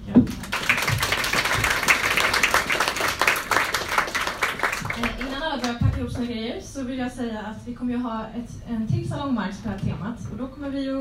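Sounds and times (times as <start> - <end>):
audience applause: 0.3 - 5.8
speech: 6.7 - 11.0.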